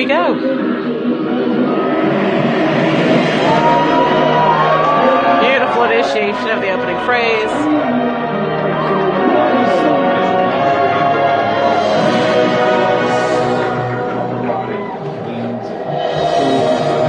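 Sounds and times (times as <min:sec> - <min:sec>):
marching band playing: 0:00.1 - 0:17.0.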